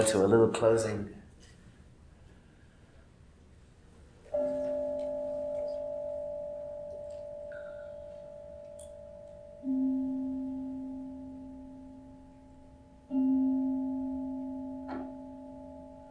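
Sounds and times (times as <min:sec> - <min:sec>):
speech: 0:00.0 - 0:01.2
deep bell struck and ringing: 0:04.3 - 0:16.0.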